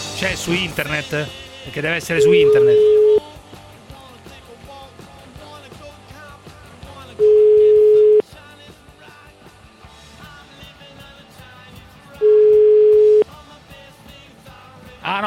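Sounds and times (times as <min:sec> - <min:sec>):
speech: 0:00.2 - 0:03.0
telephone busy signal beeps on a call to a clinic's switchboard: 0:02.2 - 0:03.2, 0:07.2 - 0:08.2, 0:12.2 - 0:13.2.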